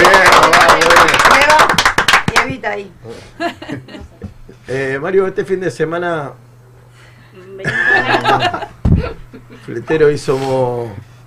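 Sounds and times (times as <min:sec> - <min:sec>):
hands clapping: 0:00.0 - 0:02.8
laughter: 0:03.4 - 0:04.6, 0:07.6 - 0:09.8
speech: 0:04.7 - 0:06.5, 0:07.6 - 0:11.1.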